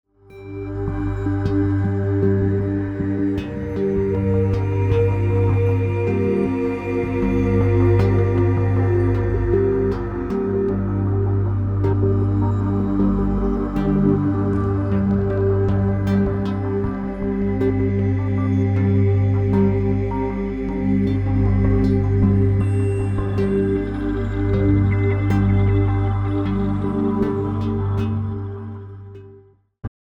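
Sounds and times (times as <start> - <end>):
mysterious brooding ambient video music: 0.2 - 29.5.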